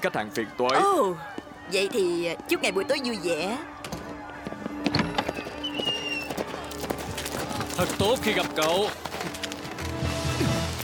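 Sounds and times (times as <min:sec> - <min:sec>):
speech: 0:00.0 - 0:04.0, 0:07.8 - 0:09.4
faint murmur of voices: 0:00.0 - 0:08.6
horse hooves clip-clopping: 0:04.4 - 0:10.8.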